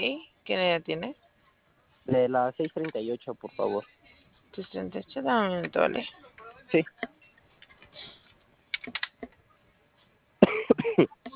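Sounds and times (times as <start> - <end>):
speech: 0.0 - 1.2, 2.1 - 7.2, 10.8 - 11.2
loud harsh coughing: 10.4 - 11.2.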